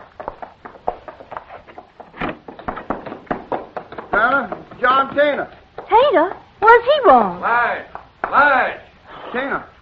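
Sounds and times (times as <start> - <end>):
rapid insistent knocking on a door: 2.2 - 6.4
speech: 4.2 - 9.7.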